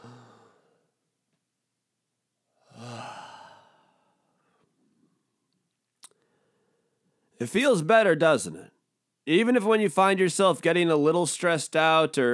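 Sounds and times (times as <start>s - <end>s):
deep breaths in and out: 0.0s - 1.0s, 2.6s - 5.2s, 6.2s - 7.4s
brief click: 5.5s - 6.2s
speech: 7.4s - 12.3s.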